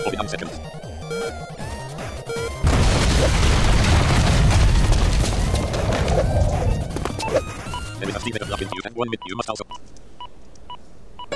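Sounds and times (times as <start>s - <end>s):
chiptune-like tones: 0.0s - 2.6s, 4.3s - 10.4s
speech: 0.1s - 2.6s, 8.0s - 10.0s
video game explosion with crackling debris: 2.6s - 6.9s.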